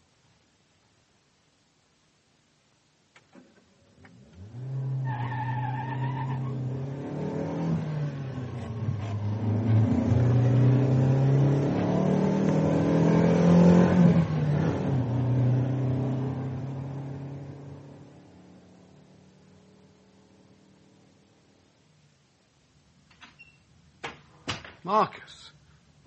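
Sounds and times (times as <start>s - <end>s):
car engine starting at the foot of a drive: 3.2s - 21.2s
speech: 24.9s - 26.0s.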